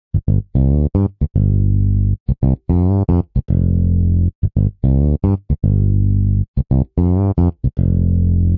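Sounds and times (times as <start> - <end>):
African funk bass line in G minor: 0.1 - 8.5.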